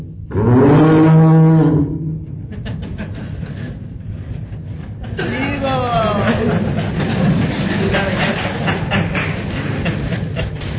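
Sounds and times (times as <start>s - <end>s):
steady hum: 0.0s - 10.7s
person imitating a cow mooing: 0.3s - 2.1s
laughter: 2.4s - 10.7s.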